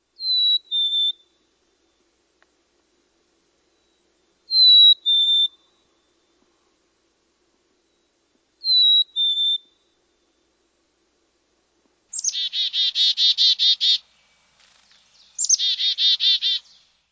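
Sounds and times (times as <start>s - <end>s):
Black-capped chickadee calling: 0.2s - 1.4s, 3.7s - 6.2s, 8.6s - 10.0s, 12.1s - 17.0s.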